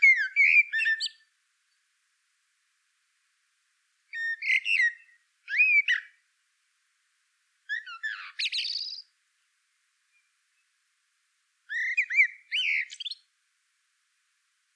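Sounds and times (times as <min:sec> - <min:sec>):
Turdus merula calling: 0:00.0 - 0:01.2, 0:04.2 - 0:06.2, 0:07.7 - 0:09.1, 0:11.7 - 0:13.2.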